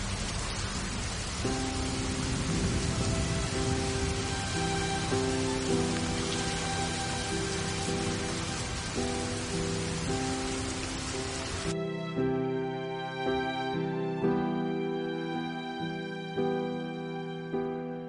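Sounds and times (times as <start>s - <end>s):
heavy rain: 0.0s - 11.8s
soft sustained musical tones: 0.0s - 18.0s.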